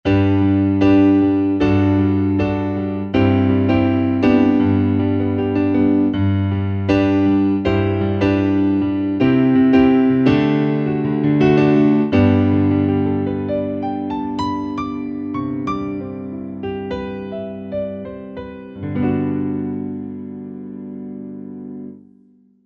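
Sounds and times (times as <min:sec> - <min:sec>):
soft stereo piano from a Korg TR-Rack: 0:00.0 - 0:22.6.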